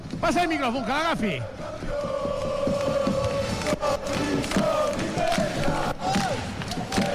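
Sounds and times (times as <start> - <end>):
speech: 0.2 - 2.1
large crowd chanting and cheering: 0.3 - 7.1
scattered applause: 2.8 - 7.1.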